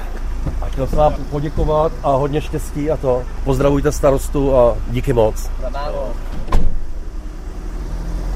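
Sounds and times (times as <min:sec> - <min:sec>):
fire truck door slamming shut: 0:00.0 - 0:02.0, 0:06.2 - 0:07.1
heavy fire truck engine idling and pulling away: 0:00.0 - 0:08.3
speech: 0:00.8 - 0:06.4.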